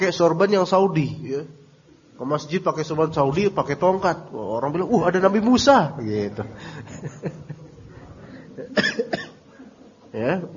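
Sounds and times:
speech: 0.0 - 1.6, 2.2 - 7.5, 10.2 - 10.5
laughter: 6.3 - 8.8
person coughing during a religious lecture: 8.5 - 9.4.

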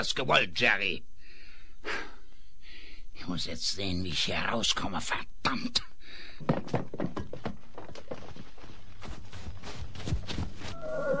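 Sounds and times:
speech: 0.0 - 1.1, 3.2 - 7.1
hoof clops: 6.4 - 11.1
horse whinnying with a high-pitched neigh: 10.7 - 11.1.

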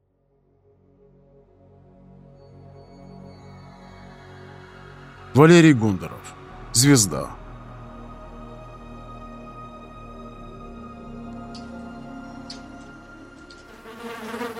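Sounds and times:
speech: 5.4 - 7.4
housefly buzzing as it flies from a wall to a concrete floor: 11.6 - 14.5.

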